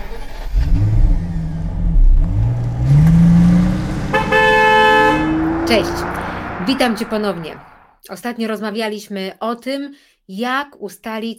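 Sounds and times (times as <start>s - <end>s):
car engine revving as it drives off: 0.2s - 8.0s
car horn blast: 2.3s - 7.9s
speech: 5.7s - 11.3s.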